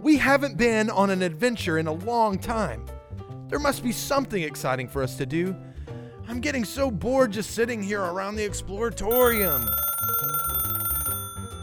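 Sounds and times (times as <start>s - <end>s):
speech: 0.0s - 5.7s, 6.3s - 9.9s
old rotary telephone bell ringing: 9.1s - 11.6s.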